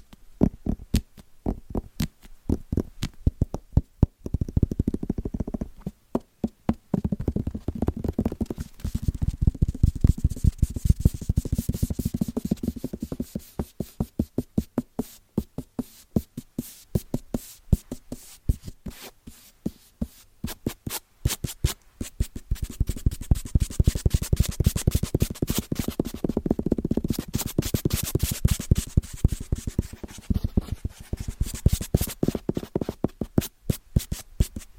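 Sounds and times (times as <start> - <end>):
fingers tapping quickly on wrapped Christmas presents: 0.4 - 16.4, 22.3 - 34.6
soft papery scratching: 7.7 - 13.5, 20.6 - 33.2.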